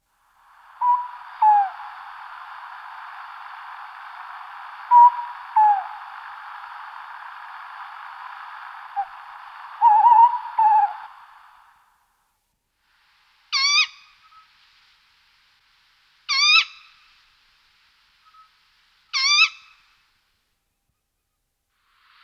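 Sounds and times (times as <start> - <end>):
tawny owl calling: 0.5 - 11.7, 13.5 - 14.5, 16.3 - 17.1, 18.2 - 19.9.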